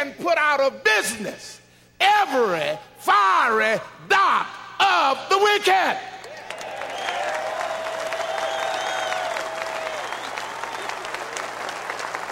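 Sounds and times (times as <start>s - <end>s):
speech: 0.1s - 6.1s
crowd clapping during a sermon: 6.2s - 12.3s.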